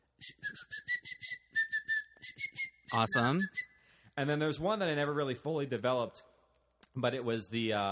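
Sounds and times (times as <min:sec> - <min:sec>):
person whistling with the smile whistle technique: 0:00.0 - 0:03.9
speech: 0:00.2 - 0:00.9, 0:02.9 - 0:03.6, 0:04.2 - 0:06.3, 0:07.0 - 0:07.9.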